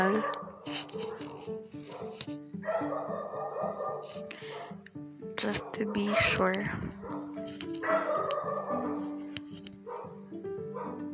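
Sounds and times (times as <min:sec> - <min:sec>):
speech: 0:00.0 - 0:01.3, 0:05.4 - 0:07.0
dogs barking and yipping: 0:00.0 - 0:04.8, 0:05.6 - 0:06.4, 0:07.0 - 0:11.1
dogs with higher whiny yelps: 0:00.0 - 0:04.8, 0:07.0 - 0:09.2, 0:09.8 - 0:10.2, 0:10.8 - 0:11.0.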